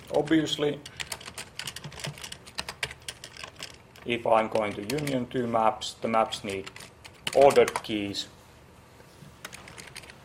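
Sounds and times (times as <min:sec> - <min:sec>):
speech: 0:00.1 - 0:01.0, 0:04.0 - 0:08.4
typing on a computer keyboard while writing code: 0:00.8 - 0:05.2, 0:06.4 - 0:07.9, 0:09.4 - 0:10.2.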